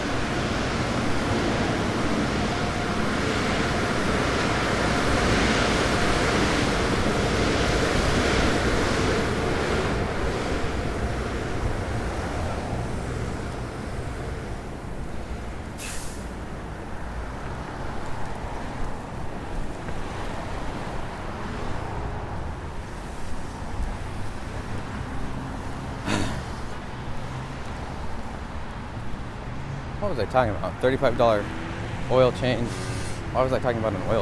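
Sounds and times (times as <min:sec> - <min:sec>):
road and wind rumble of a moving car: 0:00.0 - 0:34.1
spraying water from a car wash: 0:15.8 - 0:16.4, 0:32.6 - 0:33.3
speech: 0:30.1 - 0:34.1.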